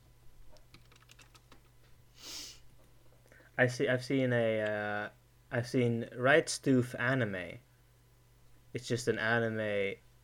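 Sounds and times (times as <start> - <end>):
typing on a computer keyboard: 0.6 - 1.7
person sniffing: 2.2 - 2.7
speech: 3.6 - 7.7, 8.7 - 10.0.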